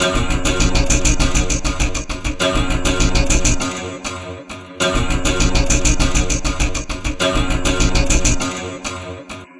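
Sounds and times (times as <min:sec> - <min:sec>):
chugging strings in electronica: 0:00.1 - 0:03.7, 0:04.9 - 0:08.5.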